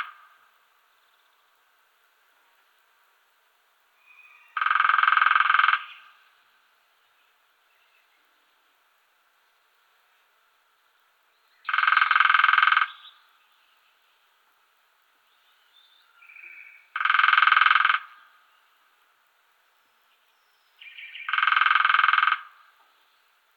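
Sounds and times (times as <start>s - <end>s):
lesser spotted woodpecker drumming: 4.5s - 6.2s, 11.7s - 13.1s, 16.9s - 18.3s, 21.1s - 22.9s.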